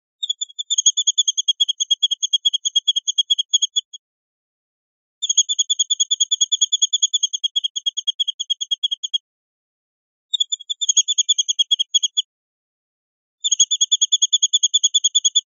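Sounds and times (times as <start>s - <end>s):
linnet chirping: 0.2s - 4.0s, 5.2s - 9.2s, 10.3s - 12.3s, 13.4s - 15.5s.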